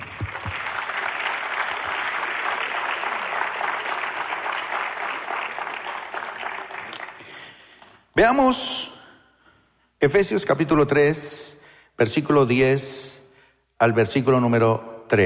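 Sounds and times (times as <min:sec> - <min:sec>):
audience applause: 0:00.0 - 0:07.9
speech: 0:08.2 - 0:08.9, 0:10.0 - 0:11.4, 0:12.0 - 0:13.1, 0:13.8 - 0:15.2.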